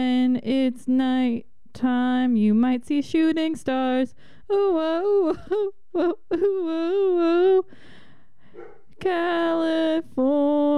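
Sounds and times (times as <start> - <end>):
speech: 0.0 - 7.9, 8.6 - 10.7
male dog yelping in short bursts: 8.6 - 8.9.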